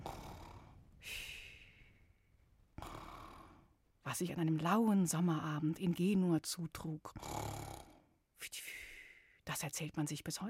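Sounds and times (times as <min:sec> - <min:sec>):
person imitating snoring: 0:00.0 - 0:00.8, 0:02.8 - 0:03.6, 0:07.2 - 0:08.0
speech: 0:04.1 - 0:07.3, 0:09.5 - 0:10.4.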